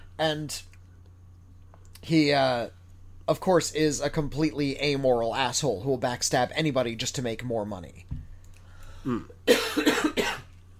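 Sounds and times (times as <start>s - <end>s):
speech: 0.2s - 0.7s, 2.0s - 8.2s, 9.0s - 9.9s
cough: 9.1s - 10.5s.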